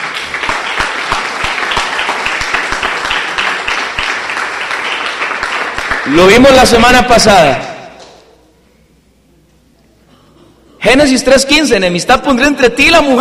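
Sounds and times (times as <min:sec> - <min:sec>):
audience applause: 0:00.0 - 0:06.5
speech: 0:06.1 - 0:07.7, 0:10.9 - 0:13.1.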